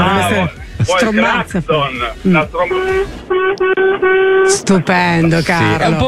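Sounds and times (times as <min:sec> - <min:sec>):
speech: 0:00.3 - 0:06.0
small toy horn toots: 0:02.6 - 0:04.6.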